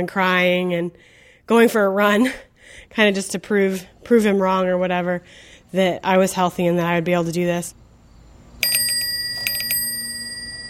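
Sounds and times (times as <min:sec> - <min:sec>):
speech: 0:00.0 - 0:07.8
bicycle bell ringing as it passes by a house: 0:08.6 - 0:10.6.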